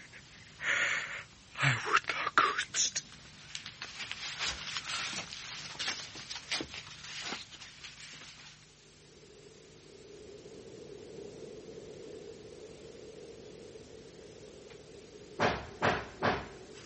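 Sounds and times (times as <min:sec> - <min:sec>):
low steady hum: 0:00.0 - 0:16.8
knocking on a door: 0:15.4 - 0:16.6.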